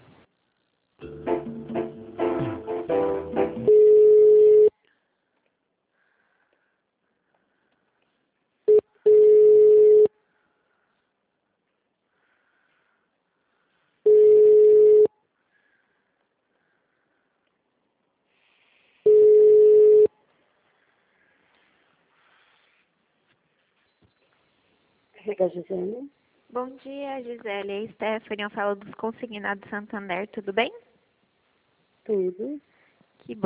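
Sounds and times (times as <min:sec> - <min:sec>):
telephone hold music during a call transfer: 0:01.0 - 0:03.8
telephone line tone bursts during a call transfer: 0:03.7 - 0:04.7, 0:08.7 - 0:10.1, 0:14.1 - 0:15.1, 0:19.1 - 0:20.1
speech: 0:25.4 - 0:30.9, 0:32.0 - 0:32.7, 0:33.3 - 0:33.4.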